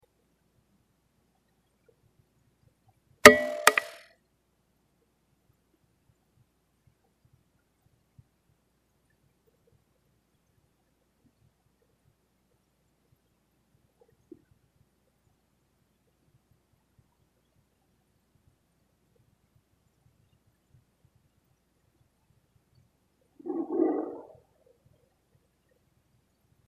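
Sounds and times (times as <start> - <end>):
stone growl: 23.4 - 24.4.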